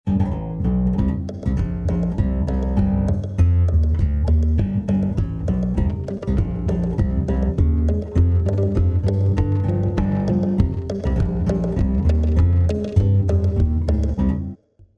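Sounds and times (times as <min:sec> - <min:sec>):
bass: 0:00.0 - 0:14.9.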